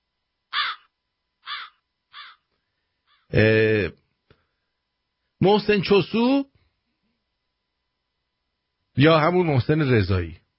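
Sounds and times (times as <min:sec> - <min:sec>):
crow cawing: 0:00.5 - 0:03.3
speech: 0:03.3 - 0:04.0, 0:05.4 - 0:06.5, 0:09.0 - 0:10.4.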